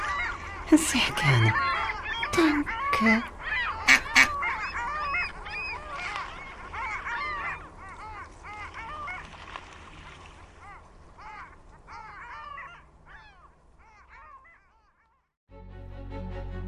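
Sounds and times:
crowd of ducks quacking: 0.0 - 9.3
speech: 0.7 - 1.7, 2.4 - 3.3.

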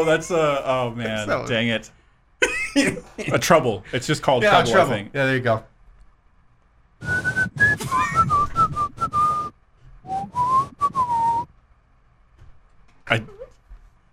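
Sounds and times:
speech: 0.0 - 2.0, 2.8 - 5.7, 13.1 - 13.3
person whistling a pop song melody into a microphone: 7.0 - 9.5, 10.1 - 11.5.

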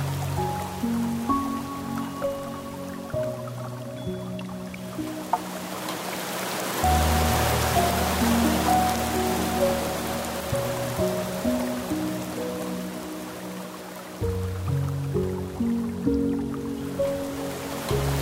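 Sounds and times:
slow piano chords: 0.0 - 18.2
soft flowing water: 0.0 - 18.2.

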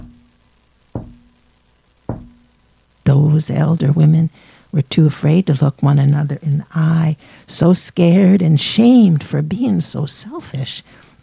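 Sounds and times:
dull knocks: 0.0 - 0.3, 1.0 - 1.3, 2.1 - 2.5
faint low hum: 0.0 - 11.2
speech: 3.4 - 11.2.

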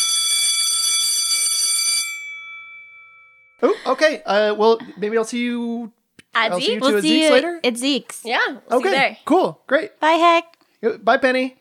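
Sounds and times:
electric alarm bell ringing to end lunch: 0.0 - 3.6
speech: 3.6 - 11.5.

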